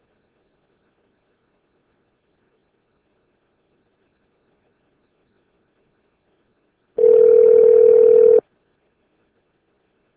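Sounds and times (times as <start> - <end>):
telephone dial tone: 7.0 - 8.4.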